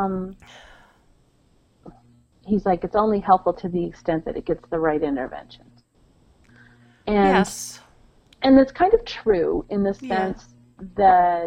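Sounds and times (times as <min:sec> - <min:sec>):
speech: 0:00.0 - 0:00.6, 0:01.8 - 0:05.7, 0:07.1 - 0:07.8, 0:08.4 - 0:11.4
faint vocal catch: 0:07.2 - 0:07.8, 0:10.0 - 0:10.4
person sneezing: 0:10.1 - 0:10.3.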